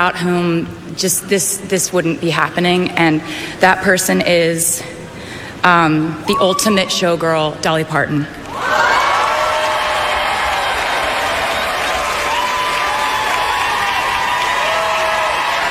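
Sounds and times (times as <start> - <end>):
speech: 0.0 - 5.0, 5.6 - 8.9
high whoops: 6.2 - 7.2, 8.5 - 15.6
audience cheering at an awards ceremony: 6.2 - 7.3, 8.4 - 15.6
large audience clapping at an awards ceremony: 8.5 - 15.6.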